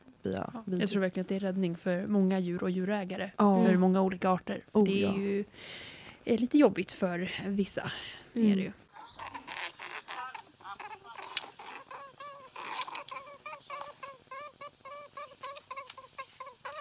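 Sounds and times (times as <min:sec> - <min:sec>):
speech: 0:00.3 - 0:08.8
adult rabbit making nasal snore-like snorting squeaks: 0:08.9 - 0:16.7.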